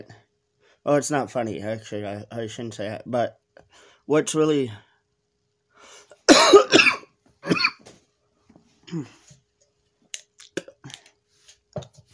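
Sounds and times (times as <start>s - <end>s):
speech: 0.0s - 0.2s, 0.8s - 4.9s, 8.9s - 9.2s
loud harsh person coughing: 6.2s - 7.9s.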